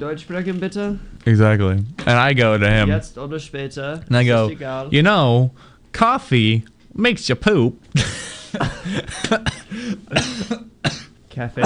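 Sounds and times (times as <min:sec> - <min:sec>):
speech: 0:00.0 - 0:11.6
person coughing harshly: 0:08.0 - 0:11.6.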